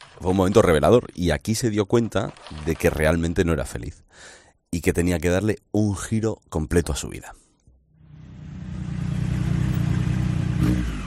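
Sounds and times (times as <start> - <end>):
speech: 0.2 - 7.4
motorcycle engine revving and pulling away: 8.0 - 11.0.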